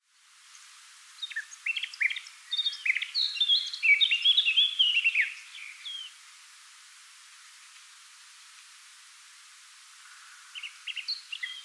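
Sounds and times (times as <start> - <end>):
Eurasian Blackcap Sylvia atricapilla song: 1.1 - 6.2, 10.0 - 11.6.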